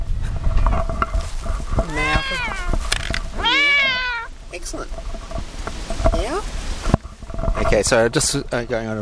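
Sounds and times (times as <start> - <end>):
rumbling noisy outdoor background: 0.0 - 8.9
cat meowing: 1.9 - 4.4
speech: 7.8 - 8.9.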